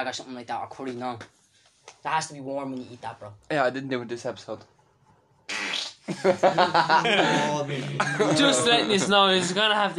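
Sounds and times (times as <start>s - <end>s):
speech: 0.0s - 1.4s, 2.0s - 4.8s, 5.6s - 9.9s
loud raspy sputtering fart: 5.5s - 6.1s
laughter: 6.1s - 9.9s.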